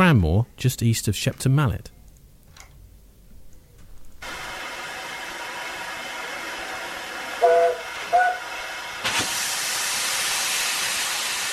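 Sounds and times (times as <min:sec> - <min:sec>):
speech: 0:00.1 - 0:02.0
steam train whistle on a preserved railway line: 0:04.3 - 0:11.5.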